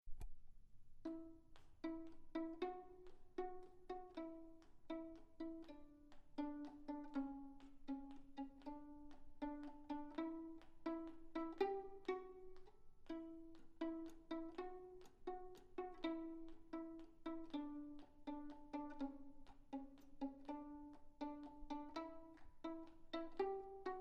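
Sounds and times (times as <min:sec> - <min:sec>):
pizzicato slängpolska folk dance tune from Småland: 0:01.0 - 0:23.9.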